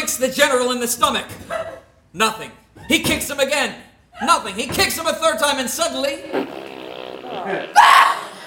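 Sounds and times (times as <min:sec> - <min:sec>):
speech: 0:00.2 - 0:06.6, 0:07.4 - 0:08.0
raspy vocal fart imitation: 0:06.1 - 0:08.3.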